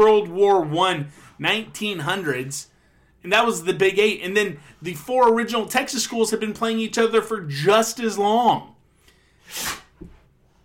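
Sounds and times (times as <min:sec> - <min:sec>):
speech: 0:00.0 - 0:08.7, 0:09.5 - 0:10.1
dog sneezing: 0:09.5 - 0:10.0.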